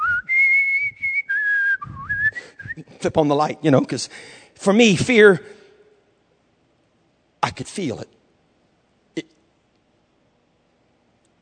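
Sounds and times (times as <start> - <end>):
person whistling a short tune: 0.0 - 2.9
brief breaths between whistled phrases: 2.3 - 2.7, 4.1 - 4.6, 5.4 - 6.0
speech: 3.0 - 5.6, 7.4 - 8.2.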